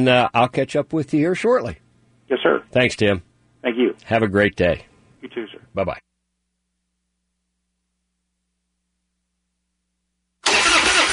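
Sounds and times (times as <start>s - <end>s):
speech: 0.0s - 6.0s
vehicle engine cranking and failing to start: 10.4s - 11.1s.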